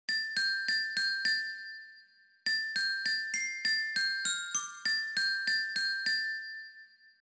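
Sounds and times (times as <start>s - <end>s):
glockenspiel: 0.1s - 7.2s.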